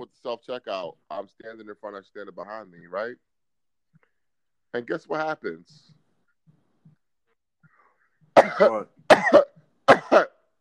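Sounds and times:
speech: 0.3 - 3.3, 4.7 - 6.0, 8.4 - 9.4
person imitating a cough: 8.4 - 10.4.

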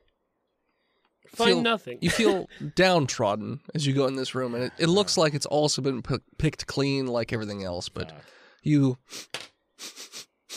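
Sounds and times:
speech: 1.2 - 10.1
person sniffing rapidly imitating a tracker dog: 9.0 - 10.5.

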